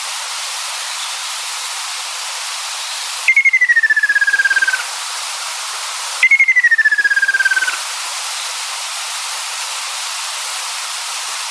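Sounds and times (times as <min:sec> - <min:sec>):
continuous hiss: 0:00.0 - 0:11.4
ruddy kingfisher trill: 0:03.3 - 0:04.8, 0:06.2 - 0:07.8
ruddy kingfisher downward-sliding pulsed call: 0:03.3 - 0:04.9, 0:06.2 - 0:07.8.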